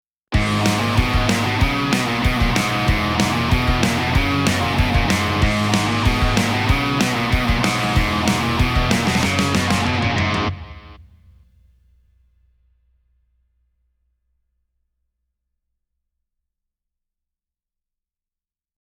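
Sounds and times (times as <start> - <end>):
drums: 0.3 - 12.8.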